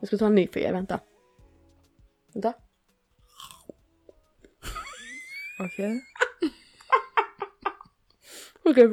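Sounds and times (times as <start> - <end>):
speech: 0.0 - 1.1, 2.3 - 2.6, 5.6 - 6.6, 8.4 - 8.9
chewing frozen grapes: 3.1 - 4.6.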